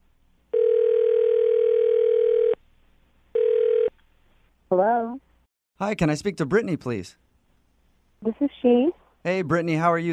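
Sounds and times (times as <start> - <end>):
telephone ringback tone: 0.6 - 2.6, 3.4 - 3.9
speech: 5.8 - 7.2, 8.3 - 10.1.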